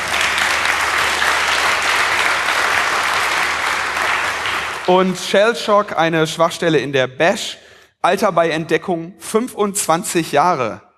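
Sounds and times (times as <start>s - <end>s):
crowd applauding with many hands clapping: 0.0s - 5.4s
speech: 4.9s - 10.8s.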